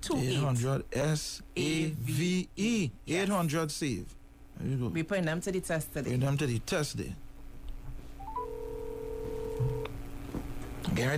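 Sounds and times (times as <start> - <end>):
low hum: 0.0 - 11.1
speech: 0.1 - 7.2, 11.0 - 11.1
electronic telephone dialing tones calling a hotline: 8.2 - 9.9.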